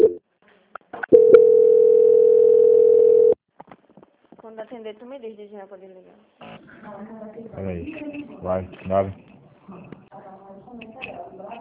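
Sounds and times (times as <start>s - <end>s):
telephone line clicks and blips during a call transfer: 1.1s - 3.4s
speech: 4.6s - 9.8s.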